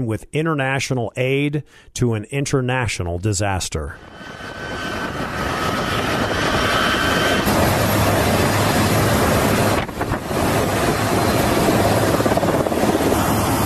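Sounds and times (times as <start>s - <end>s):
speech: 0.0s - 5.0s
turboprop engines of a C-130 transport plane arriving in Turkey: 3.9s - 13.6s
helicopter rotors arriving in Turkey with international aid: 4.0s - 13.6s
wind buffeting the microphone: 4.0s - 13.6s.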